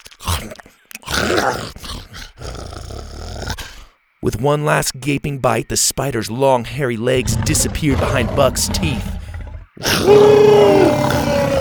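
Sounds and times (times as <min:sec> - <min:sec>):
speech: 0:01.3 - 0:01.8, 0:04.2 - 0:09.2, 0:09.8 - 0:11.3
T-Rex roaring: 0:07.2 - 0:11.5.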